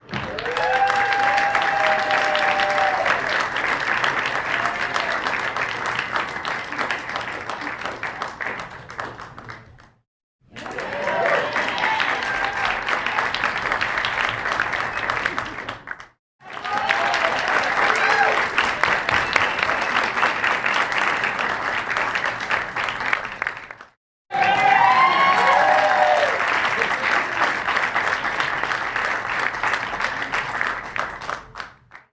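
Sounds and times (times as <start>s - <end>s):
small group cheering in a theater: 0.0s - 3.5s, 4.4s - 5.4s, 10.6s - 13.4s, 16.4s - 18.6s, 24.3s - 27.0s
small group clapping in a theater: 0.0s - 32.1s.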